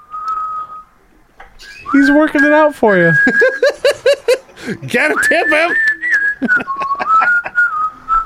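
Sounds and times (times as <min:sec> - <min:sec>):
man whistling a children's song melody: 0:00.0 - 0:01.0, 0:01.6 - 0:03.9, 0:05.0 - 0:08.2
speech: 0:01.9 - 0:03.8, 0:04.7 - 0:06.6
laughter: 0:03.2 - 0:07.7.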